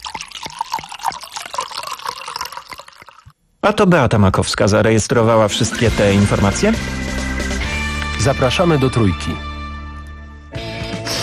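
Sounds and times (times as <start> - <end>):
water dripping: 0.0 - 3.4
speech: 3.6 - 7.0, 8.2 - 9.5.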